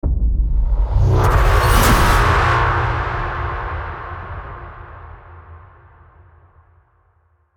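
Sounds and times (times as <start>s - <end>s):
cinematic braam hit impact: 0.0s - 6.9s.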